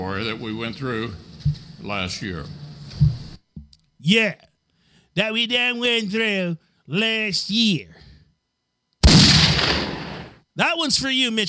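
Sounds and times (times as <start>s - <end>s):
speech: 0.1s - 2.6s, 4.0s - 4.5s, 5.2s - 8.0s, 10.6s - 11.4s
cannon blast with deep rumbling boom: 9.0s - 10.4s.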